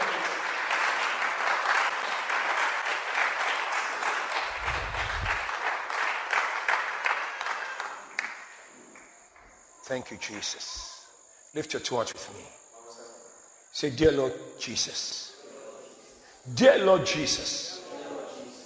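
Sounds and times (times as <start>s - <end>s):
crowd clapping hands in dense applause: 0.0s - 9.5s
speech: 9.9s - 10.9s, 11.6s - 12.6s, 13.8s - 15.3s, 16.4s - 17.7s.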